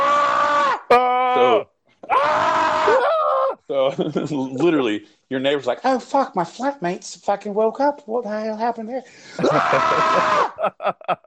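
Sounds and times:
people screaming loudly in a magic word scream-off: 0:00.0 - 0:03.6, 0:09.4 - 0:10.6
laughter: 0:03.7 - 0:04.8, 0:09.2 - 0:11.2
speech: 0:03.9 - 0:11.2.

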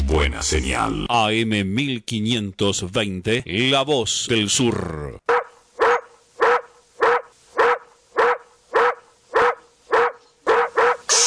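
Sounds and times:
speech: 0:00.1 - 0:05.3
dog barking: 0:05.3 - 0:11.1.

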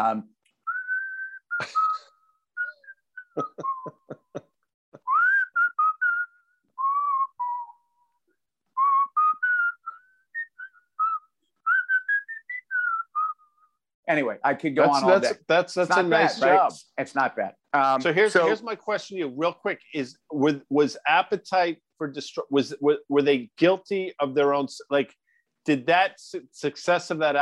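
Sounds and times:
speech: 0:00.0 - 0:00.4, 0:01.6 - 0:01.8, 0:03.4 - 0:04.5, 0:14.1 - 0:27.4
person whistling a song melody: 0:00.7 - 0:04.3, 0:05.0 - 0:08.2, 0:08.8 - 0:13.8.

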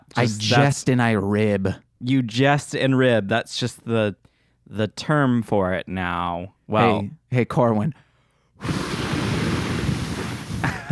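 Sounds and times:
speech: 0:00.2 - 0:08.0, 0:08.6 - 0:08.8
person blowing a breathy whoosh imitating wind: 0:08.6 - 0:10.9.

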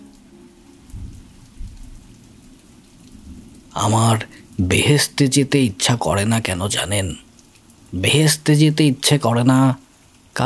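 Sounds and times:
steady rain falling: 0:00.0 - 0:10.4
soft low rumbling swells: 0:00.6 - 0:04.8
speech: 0:03.7 - 0:07.3, 0:07.9 - 0:09.8.

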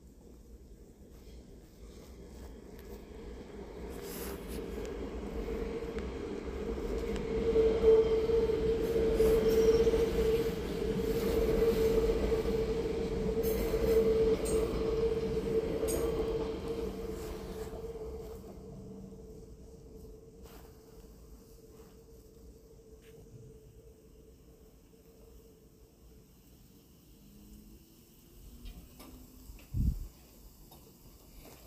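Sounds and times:
train arriving in Lindau on Lake Constance, wheels and carriages rumbling: 0:00.0 - 0:31.6
faint high squeal from train wheels: 0:09.2 - 0:10.5.

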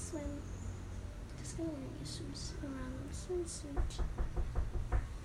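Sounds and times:
speech: 0:00.1 - 0:00.6, 0:01.5 - 0:04.7
mother knocking on a bedroom door: 0:03.7 - 0:05.2.

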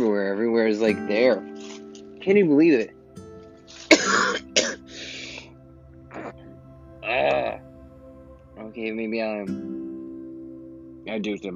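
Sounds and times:
speech: 0:00.2 - 0:03.0, 0:08.8 - 0:09.8, 0:11.1 - 0:11.5
raspy throat clearing: 0:03.7 - 0:05.4, 0:06.1 - 0:06.4
sick person coughing: 0:03.8 - 0:05.4.

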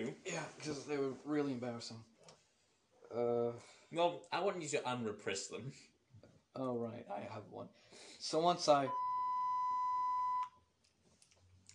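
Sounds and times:
speech: 0:00.0 - 0:02.2, 0:03.1 - 0:05.9, 0:06.6 - 0:09.1
electronic beep tone played from a phone: 0:08.9 - 0:10.5.

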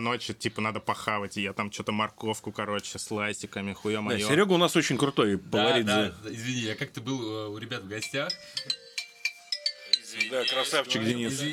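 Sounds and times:
speech: 0:00.0 - 0:08.8, 0:10.2 - 0:11.5
phone ringtone with rhythmic electronic chiming melody: 0:08.0 - 0:11.5.

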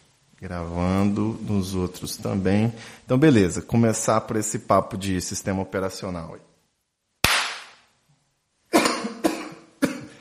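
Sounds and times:
speech: 0:00.4 - 0:06.5
person coughing: 0:08.7 - 0:10.1.

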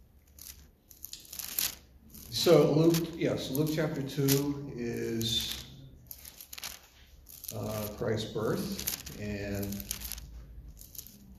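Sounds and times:
paper rustling and crinkling as it is handled: 0:00.3 - 0:11.3
speech: 0:02.4 - 0:05.6, 0:07.6 - 0:09.9.

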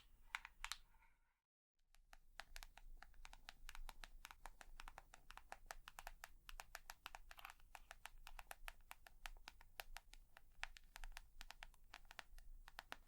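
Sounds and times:
fingertips tapping on a hard surface: 0:02.3 - 0:13.0.

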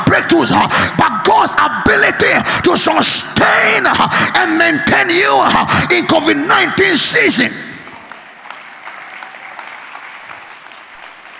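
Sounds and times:
speech: 0:00.2 - 0:07.8
audience clapping: 0:05.7 - 0:11.3.

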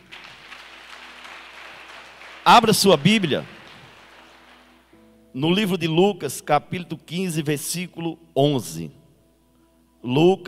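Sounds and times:
church audience applauding: 0:00.0 - 0:04.9
speech: 0:02.5 - 0:03.6, 0:05.4 - 0:09.0, 0:10.0 - 0:10.4.

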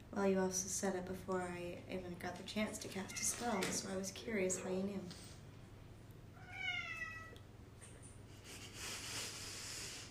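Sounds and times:
speech: 0:00.2 - 0:05.3
cat meowing: 0:06.4 - 0:07.4.

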